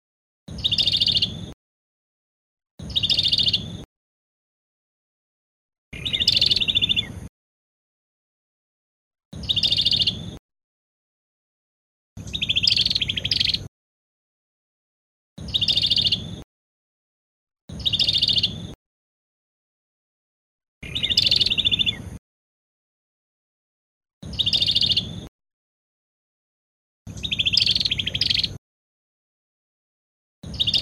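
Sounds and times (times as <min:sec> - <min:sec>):
Cambodian prinia bird singing: 0:00.5 - 0:01.5, 0:02.8 - 0:03.8, 0:06.0 - 0:07.3, 0:09.4 - 0:10.4, 0:12.2 - 0:13.7, 0:15.4 - 0:16.4, 0:17.7 - 0:18.8, 0:20.8 - 0:22.2, 0:24.2 - 0:25.3, 0:27.1 - 0:28.6, 0:30.4 - 0:30.8.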